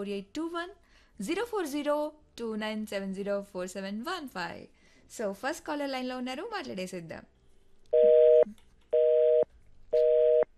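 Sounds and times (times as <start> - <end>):
speech: 0.0 - 8.6
busy tone after a dropped phone call: 8.0 - 9.4, 10.0 - 10.5.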